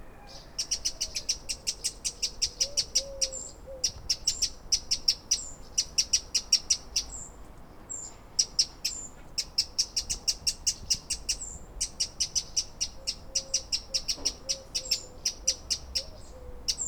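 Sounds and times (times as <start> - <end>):
Eurasian wren singing: 0.3 - 7.3, 7.9 - 16.8.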